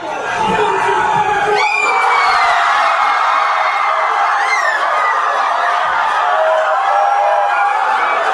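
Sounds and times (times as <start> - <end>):
stadium crowd cheering after winning penalty: 0.0 - 8.3.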